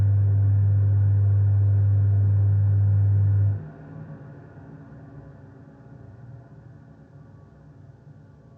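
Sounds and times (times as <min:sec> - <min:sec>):
toilet ventilation fan switching off: 0:00.2 - 0:03.6.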